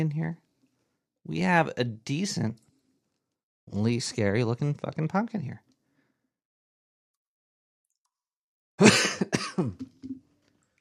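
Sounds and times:
speech: 0.0 - 0.4, 1.2 - 2.6, 3.7 - 5.6, 8.8 - 9.9
person coughing close to the microphone: 8.8 - 9.9
brief throat clear: 8.8 - 10.0.

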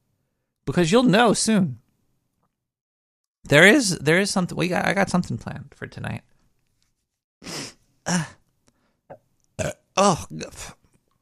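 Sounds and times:
speech: 0.7 - 1.8, 3.5 - 6.3, 7.4 - 8.4, 10.0 - 10.8
person burping from drinking malt liquor: 8.1 - 8.4, 9.1 - 10.7.

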